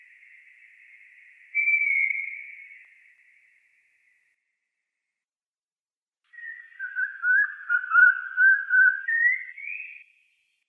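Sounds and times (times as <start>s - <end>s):
Eurasian pygmy owl giving a wavering run of whistled notes: 1.6s - 2.8s, 6.4s - 10.0s.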